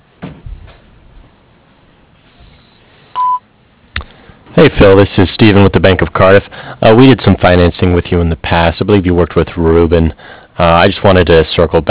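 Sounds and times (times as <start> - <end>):
voicemail beep tone: 3.2 - 3.4
speech: 4.6 - 11.8.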